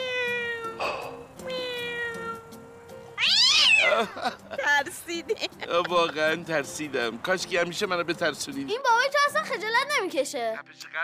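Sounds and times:
cat meowing: 0:00.0 - 0:02.6, 0:03.2 - 0:04.0
laughter: 0:03.8 - 0:06.4
speech: 0:04.0 - 0:11.0.

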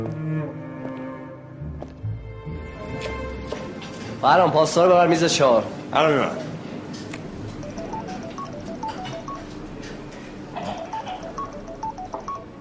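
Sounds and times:
speech: 0:04.2 - 0:06.5
mobile phone beeping a melody of short electronic tones at a workplace: 0:07.6 - 0:09.5, 0:10.7 - 0:12.5.

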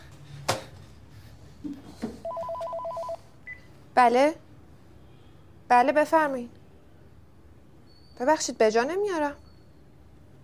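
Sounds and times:
electronic telephone ringing with two-tone warbling trill: 0:02.2 - 0:03.3
speech: 0:04.0 - 0:04.4, 0:05.7 - 0:06.6, 0:08.2 - 0:09.4.

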